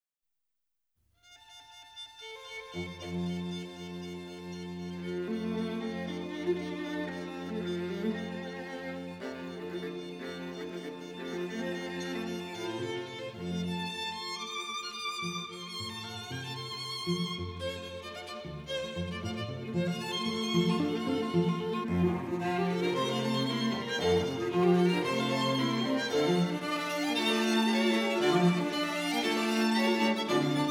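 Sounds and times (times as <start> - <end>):
chamber music: 2.8 - 30.6.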